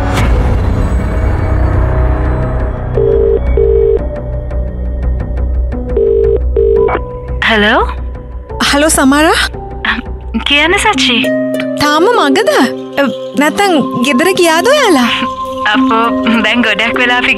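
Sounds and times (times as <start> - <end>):
steady droning musical background: 0.0 - 17.3
ringback tone of an outgoing phone call: 3.0 - 4.1, 5.9 - 7.0
speech: 7.5 - 8.0, 8.7 - 9.5, 10.3 - 17.3.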